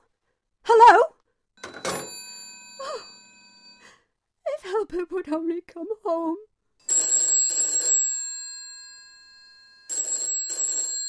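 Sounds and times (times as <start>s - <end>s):
telephone bell ringing: 1.6s - 3.9s, 6.9s - 11.0s
speech: 4.9s - 6.5s.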